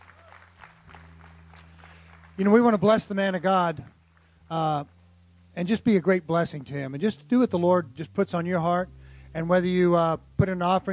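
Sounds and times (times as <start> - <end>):
church audience clapping hands: 0.0 - 3.1
constant low hum: 0.0 - 10.9
speech: 2.4 - 5.0, 5.6 - 10.9.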